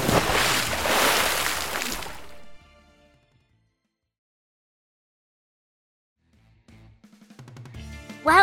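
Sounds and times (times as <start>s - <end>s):
body belly flopping into pond water: 0.0s - 2.6s
water sloshing and dripping: 0.0s - 2.6s.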